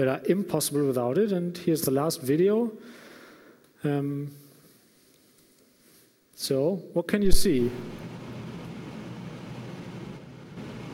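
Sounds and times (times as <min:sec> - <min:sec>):
speech: 0:00.0 - 0:03.0, 0:03.8 - 0:04.4, 0:06.4 - 0:08.2
aircraft engine and airflow roar during a fully automatic Category 3 landing: 0:07.9 - 0:10.9.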